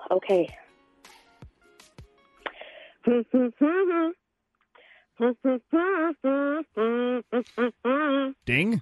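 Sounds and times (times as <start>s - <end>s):
speech: 0.1s - 0.6s, 3.0s - 4.2s, 5.2s - 8.8s
person humming a TV theme tune: 3.0s - 4.2s, 5.2s - 8.4s.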